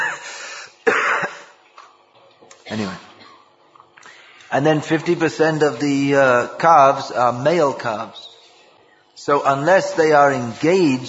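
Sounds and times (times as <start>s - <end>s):
person coughing: 0.0s - 1.6s, 2.6s - 3.5s
person clearing throat: 0.8s - 1.6s, 2.5s - 3.6s
speech: 2.7s - 3.1s, 4.5s - 8.2s, 9.2s - 11.0s.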